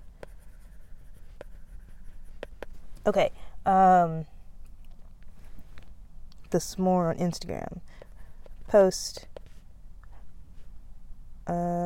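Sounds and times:
pen scratching on paper writing by hand: 0.2s - 2.7s
speech: 3.1s - 4.3s, 6.5s - 8.0s, 8.7s - 9.3s, 11.5s - 11.7s.

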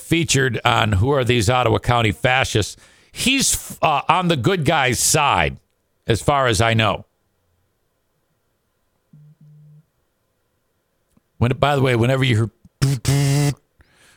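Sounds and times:
speech: 0.1s - 7.1s, 11.4s - 13.6s
phone vibrating in low buzzing pulses: 9.1s - 9.9s.

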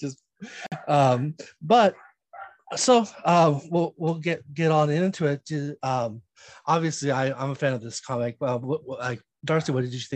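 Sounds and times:
speech: 0.0s - 2.1s, 2.7s - 10.1s
dog barking and yelping: 1.9s - 2.8s.

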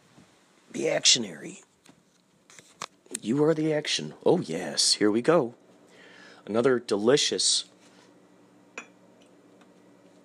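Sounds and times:
quiet hum: 0.0s - 10.2s
speech: 0.8s - 1.7s, 3.2s - 5.6s, 6.4s - 7.7s
glass of ozonated water clinking: 8.8s - 9.0s.

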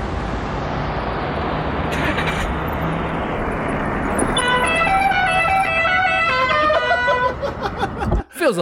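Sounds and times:
steady road and engine rumble: 0.0s - 8.6s
novelty musical car horn blaring melodic notes: 4.4s - 7.4s
laughter: 6.4s - 8.3s.

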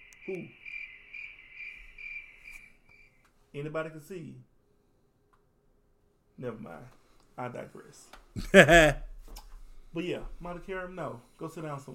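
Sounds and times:
crickets chirping in a high-pitched trill: 0.0s - 3.2s
speech: 0.2s - 0.6s, 3.6s - 4.5s, 6.4s - 9.4s, 10.0s - 11.9s
laughter: 8.4s - 9.0s.

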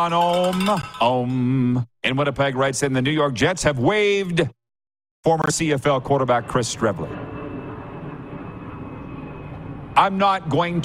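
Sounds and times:
speech: 0.0s - 4.6s, 5.2s - 7.2s, 10.0s - 10.8s
airplane flying overhead: 5.8s - 10.8s.

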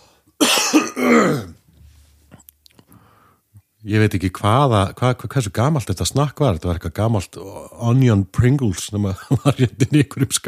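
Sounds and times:
man coughing heavily: 0.4s - 1.6s
quiet breathing: 1.8s - 3.7s
speech: 3.8s - 10.4s.

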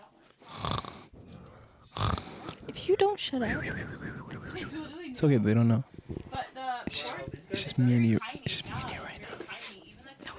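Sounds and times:
dog snoring loudly into a microphone: 0.4s - 1.2s, 1.8s - 2.6s
speech: 2.9s - 9.0s.

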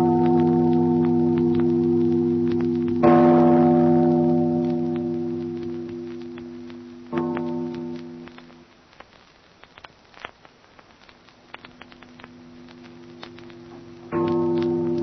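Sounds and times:
church bell ringing: 0.0s - 6.0s, 7.1s - 8.2s, 14.1s - 15.0s.

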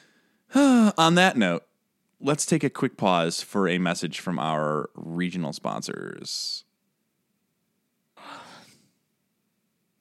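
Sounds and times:
breathy yawn: 0.5s - 1.0s, 8.2s - 8.8s
speech: 0.5s - 6.7s.

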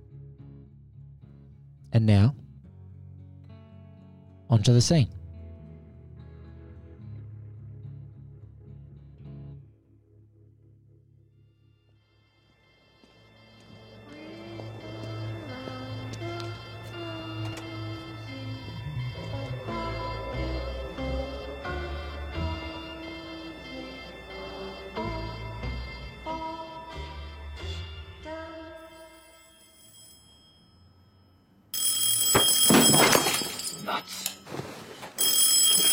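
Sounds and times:
speech: 1.9s - 2.4s, 4.5s - 5.2s
phone ringing: 12.3s - 26.3s, 31.8s - 35.9s
lamp smashing: 32.3s - 34.4s
glass shattering and clattering: 32.3s - 34.6s.

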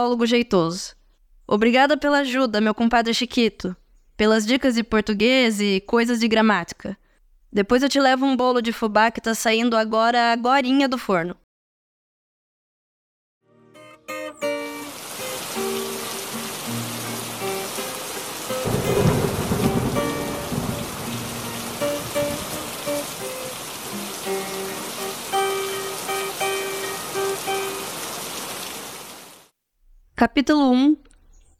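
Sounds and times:
speech: 0.0s - 11.4s, 30.2s - 31.1s
heavy rain: 14.6s - 29.5s
deep roll of thunder: 16.9s - 25.2s.

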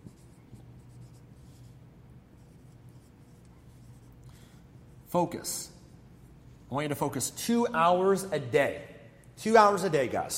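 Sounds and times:
pen or marker scratching on a surface while writing by hand: 0.0s - 1.8s, 2.4s - 4.1s
low hum: 0.0s - 10.3s
speech: 5.1s - 5.8s, 6.7s - 10.3s.

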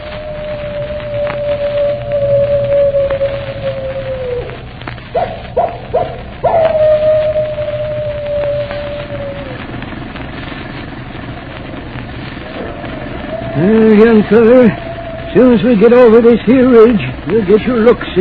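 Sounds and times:
animal howling: 0.0s - 9.9s, 12.4s - 17.1s
low rumbling background: 0.0s - 18.2s
speech: 14.2s - 14.8s, 15.4s - 18.2s.

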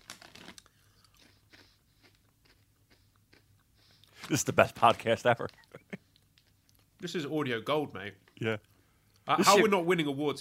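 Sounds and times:
durian-flavored crisps being chewed: 0.0s - 3.4s
speech: 4.3s - 5.6s, 7.0s - 8.7s, 9.3s - 10.4s.

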